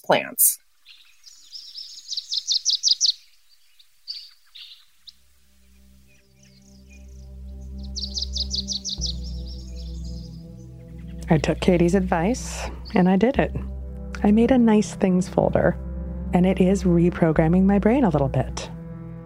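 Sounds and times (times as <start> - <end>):
speech: 0.0 - 0.6, 11.3 - 18.8
bird singing a bright trill of rapid repeated chirps: 0.6 - 13.3
soft low musical drone: 5.2 - 19.2.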